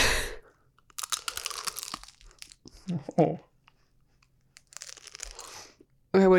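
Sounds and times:
biting into a hard crunchy vanilla ice cream treat: 0.8s - 2.8s, 4.5s - 5.8s
speech: 2.9s - 3.5s, 6.2s - 6.3s.

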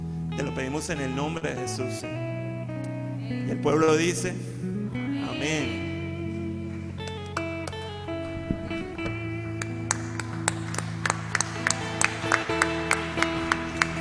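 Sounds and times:
sustained organ-like chords: 0.0s - 13.9s
speech: 0.4s - 2.3s, 3.3s - 4.5s, 5.3s - 5.8s
church audience clapping after a prayer: 6.3s - 13.9s.

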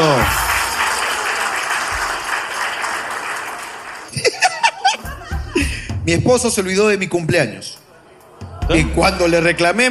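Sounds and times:
live comedy-show audience applauding: 0.0s - 4.9s
laughter: 4.1s - 6.0s
speech: 6.1s - 7.8s, 8.7s - 9.8s.

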